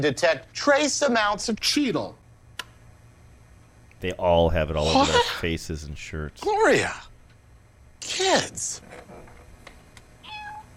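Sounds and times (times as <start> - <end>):
speech: 0.0 - 2.2, 4.0 - 7.1, 8.0 - 9.1
cat meowing: 10.2 - 10.7.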